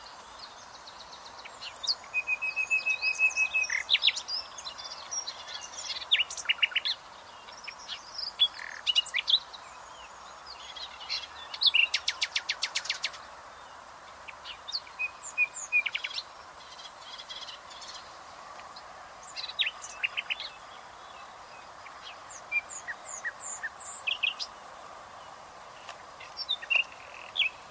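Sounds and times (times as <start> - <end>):
common nightingale singing varied phrases: 0.0 - 27.6.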